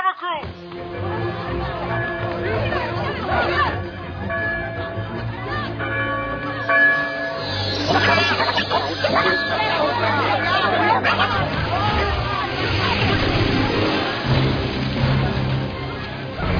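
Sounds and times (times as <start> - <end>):
busy crowd of overlapping voices and commotion: 0.0 - 16.5
speech: 0.2 - 1.0
alarm bell ringing: 4.2 - 10.8
laughter: 7.4 - 16.5.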